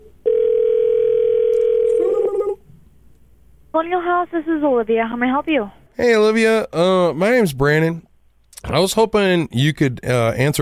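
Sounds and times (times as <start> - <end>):
outgoing phone call ringing tone to a shop: 0.2 - 2.6
speech: 3.8 - 10.6.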